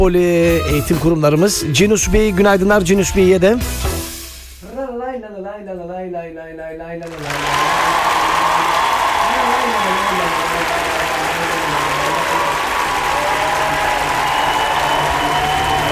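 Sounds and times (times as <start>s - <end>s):
speech: 0.0s - 4.0s, 5.2s - 8.1s
applause: 7.0s - 15.8s.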